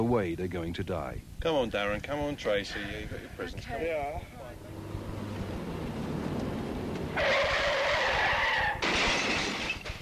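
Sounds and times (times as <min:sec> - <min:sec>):
speech: 0:00.0 - 0:04.8, 0:07.2 - 0:07.4
steady low car engine rumble: 0:02.0 - 0:08.0
car tires shrieking in a skid out of control: 0:04.7 - 0:09.1.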